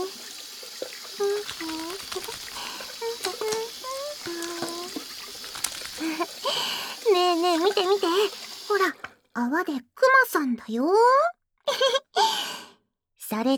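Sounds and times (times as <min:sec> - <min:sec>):
tap water running while washing hands with soap: 0:00.0 - 0:09.1
speech: 0:09.4 - 0:11.3, 0:13.4 - 0:13.5.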